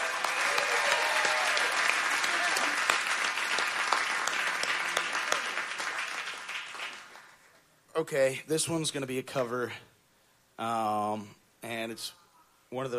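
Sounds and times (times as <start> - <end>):
concert audience applauding a band: 0.0 - 7.5
speech: 8.0 - 9.9, 10.6 - 12.9.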